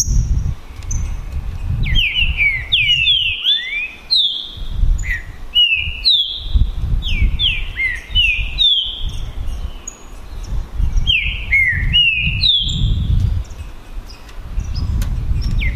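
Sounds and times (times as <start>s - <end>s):
male green-winged saltator singing in a song contest: 0.0s - 1.2s, 1.8s - 15.7s.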